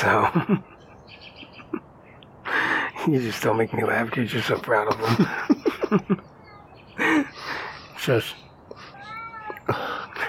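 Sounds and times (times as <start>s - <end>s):
speech: 0.0s - 0.8s, 3.0s - 6.3s, 8.0s - 8.4s
laughter: 0.0s - 0.9s, 4.9s - 6.2s
cat meowing: 6.4s - 6.8s, 8.8s - 10.0s.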